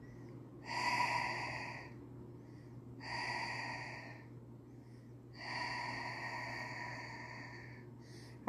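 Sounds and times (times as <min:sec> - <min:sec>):
deep breath drawn in through the nose in a breathing exercise: 0:00.0 - 0:08.4
faint steady low hum: 0:00.0 - 0:08.4.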